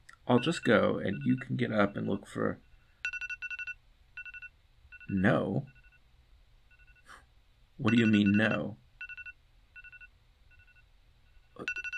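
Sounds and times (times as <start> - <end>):
speech: 0.3 - 2.7, 5.1 - 5.8, 7.8 - 8.8
phone alarm ringing in short electronic beeping bursts: 0.4 - 6.0, 6.7 - 7.1, 7.9 - 11.9.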